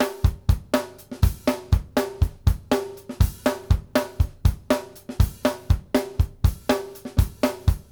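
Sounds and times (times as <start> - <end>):
drums: 0.0 - 7.9.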